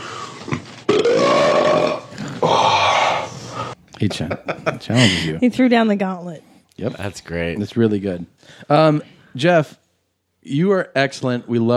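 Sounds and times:
loud drawn-out fart: 0.5 - 3.3
speech: 4.0 - 9.8, 10.4 - 11.7.

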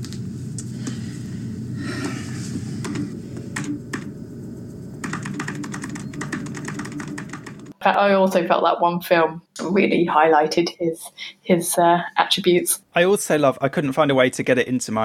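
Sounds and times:
low steady hum: 0.0 - 15.0
typing on a computer keyboard: 5.0 - 7.8
speech: 7.8 - 15.0.

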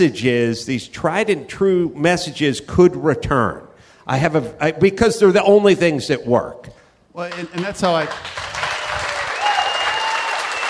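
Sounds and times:
speech: 0.0 - 8.4
live crowd audience applause: 7.3 - 10.6.

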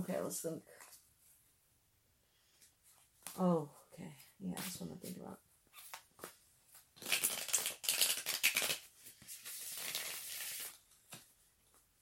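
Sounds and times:
speech: 0.1 - 1.0, 3.4 - 5.4
deck of cards being shuffled: 5.8 - 11.3.

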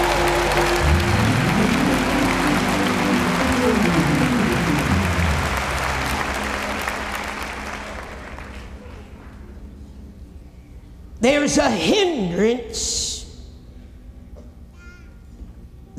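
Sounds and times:
large crowd applauding: 0.0 - 9.6
speech: 11.2 - 13.0.

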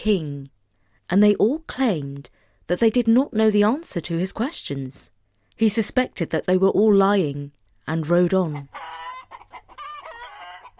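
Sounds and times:
speech: 0.0 - 9.0
hens clucking: 8.4 - 10.7.

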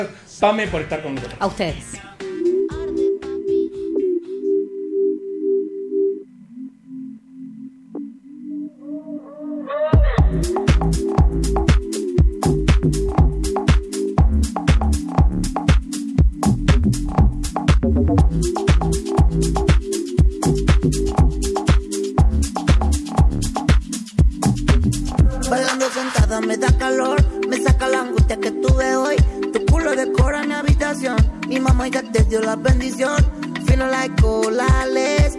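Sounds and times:
speech: 0.0 - 2.0
song played on air: 0.6 - 35.3
full band with punchy drums and bass: 10.2 - 35.3.

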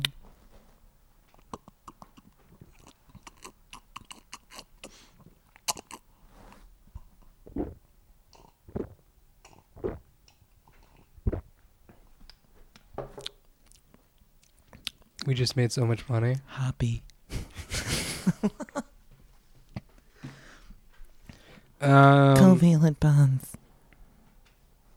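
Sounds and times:
soft wet mouth clicks and smacks: 0.0 - 0.2, 1.3 - 11.6
person sipping and gulping beer: 1.4 - 11.8
person swallowing beer: 1.5 - 10.2, 10.8 - 11.6
speech: 15.3 - 17.1, 21.8 - 23.6.

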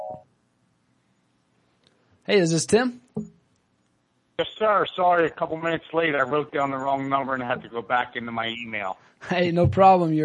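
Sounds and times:
touch-tone beep from a phone being dialed: 0.0 - 0.2
faint low hum: 0.0 - 10.2
speech: 2.3 - 3.4, 4.4 - 10.2.

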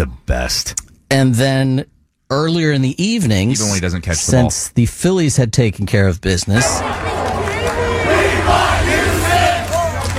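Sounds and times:
speech: 0.0 - 7.9
baseball stadium crowd of fans chanting: 6.6 - 10.1.

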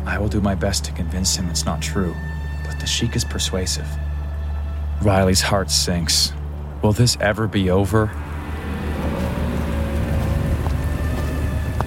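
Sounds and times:
speech: 0.1 - 4.1, 5.0 - 8.3
deep low rumble: 7.8 - 11.8
heavy freezing rain pouring: 8.2 - 11.8.

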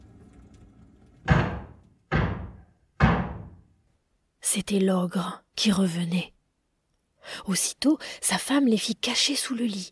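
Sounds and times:
loud heavy knocks on a door: 1.2 - 3.6
speech: 4.6 - 6.4, 7.3 - 9.8.

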